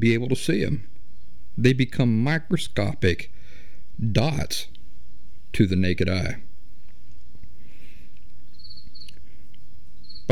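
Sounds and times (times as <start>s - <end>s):
speech: 0.0s - 1.0s, 1.6s - 3.4s, 4.0s - 4.7s, 5.5s - 6.5s
cricket chirping indoors in a studio: 8.4s - 10.2s.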